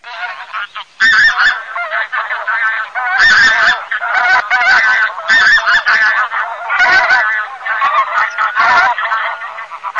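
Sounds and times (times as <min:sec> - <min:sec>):
Lombardelle goose: 0:00.0 - 0:09.9.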